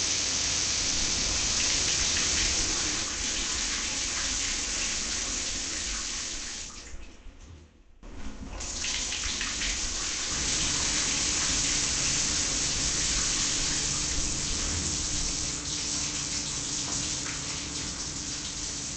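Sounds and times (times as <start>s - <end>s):
shower running with falling water: 0.0s - 7.1s, 8.0s - 18.9s.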